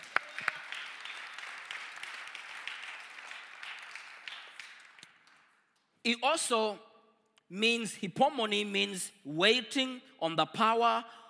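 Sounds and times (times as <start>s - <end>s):
crowd at a sermon clapping hands: 0.0s - 5.9s
speech: 6.0s - 6.9s, 7.5s - 11.2s.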